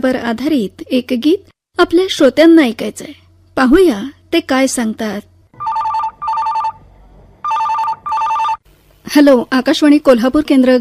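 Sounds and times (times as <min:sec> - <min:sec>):
speech: 0:00.0 - 0:05.3, 0:09.2 - 0:10.8
telephone ringing in double rings: 0:05.6 - 0:06.8, 0:07.4 - 0:08.6.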